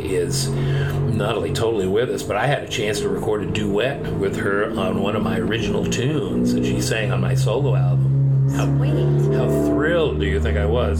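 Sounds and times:
bus engine drone: 0.0 - 10.9
speech: 0.1 - 10.9.

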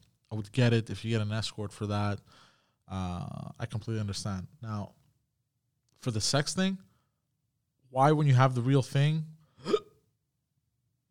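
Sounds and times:
speech: 0.3 - 5.0, 6.0 - 6.9, 7.9 - 9.8
hiccup: 9.6 - 10.0
short low burp: 9.6 - 10.0.

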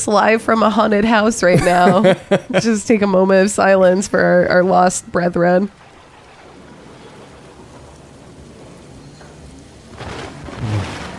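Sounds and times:
speech: 0.0 - 5.8
heavy rain: 0.0 - 11.1
thunder rumbling: 1.2 - 11.1
laughter: 1.4 - 2.9.

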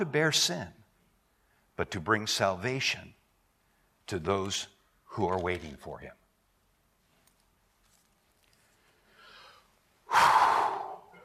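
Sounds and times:
speech: 0.0 - 0.8, 1.8 - 3.2, 4.1 - 6.2
deep breath drawn through face masks: 9.0 - 11.2.

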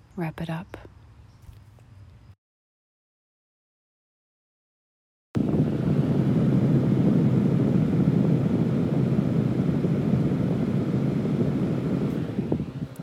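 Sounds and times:
speech: 0.2 - 0.9
small desk fan whirring: 5.4 - 13.0.

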